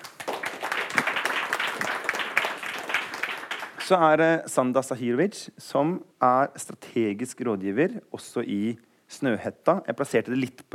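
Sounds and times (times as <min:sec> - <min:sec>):
audience applauding: 0:00.0 - 0:04.0
speech: 0:03.9 - 0:10.7.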